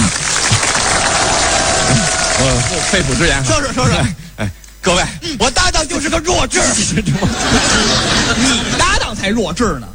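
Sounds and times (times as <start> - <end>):
applause at a dinner gathering with drinks: 0.0 - 3.5
laughter: 0.7 - 4.5, 6.8 - 9.3
speech: 2.8 - 9.9.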